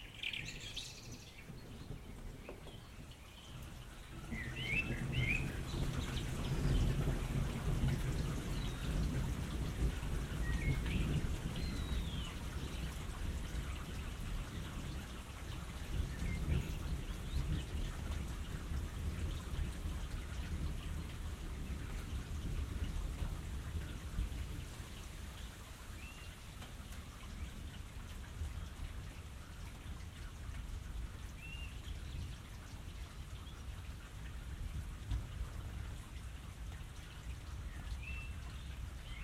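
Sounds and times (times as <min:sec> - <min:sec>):
steady rain in a night thunderstorm: 0:00.0 - 0:39.2
low rolling rumble of thunder: 0:01.4 - 0:24.9.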